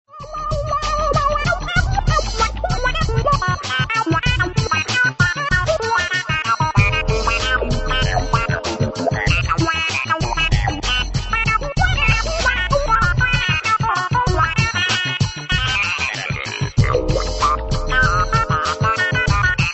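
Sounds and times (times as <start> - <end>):
samchillian electronic keyboard instrument: 0.1 - 19.7.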